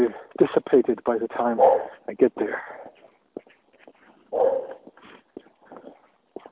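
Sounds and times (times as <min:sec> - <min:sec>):
speech: 0:00.7 - 0:02.8
dog barking: 0:01.6 - 0:02.0, 0:04.3 - 0:04.9.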